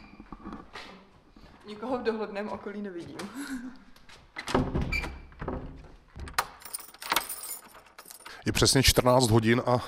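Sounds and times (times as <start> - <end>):
speech: 1.7 - 3.9, 8.5 - 9.8
door lock of a polling room clinking and thunking: 4.4 - 8.6
keys jangling: 6.3 - 8.6.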